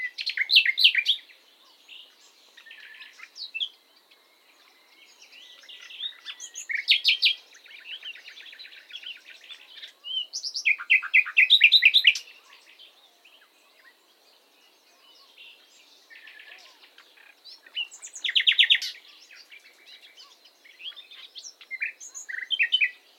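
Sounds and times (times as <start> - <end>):
Common nightingale Luscinia megarhynchos singing: 0.0 - 23.1.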